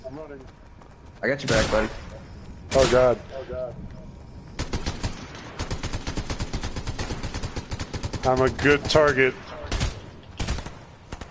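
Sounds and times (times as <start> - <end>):
speech: 0.1 - 2.0, 2.8 - 3.9, 8.2 - 9.4
rapid gunfire in a video game: 1.4 - 3.3, 4.6 - 11.3.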